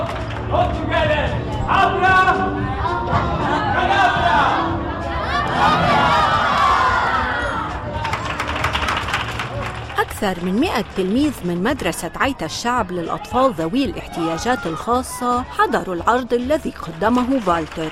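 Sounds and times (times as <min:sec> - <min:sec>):
dense crowd hubbub: 0:00.8 - 0:17.9
large group of children cheering and shouting at a show: 0:02.6 - 0:08.1, 0:13.4 - 0:15.8
speech: 0:10.2 - 0:17.9.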